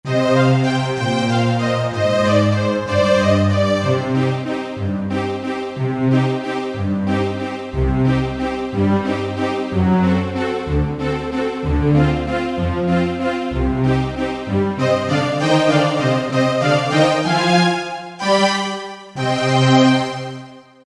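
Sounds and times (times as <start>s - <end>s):
synthesizer string pad factory preset: 0.1s - 20.7s.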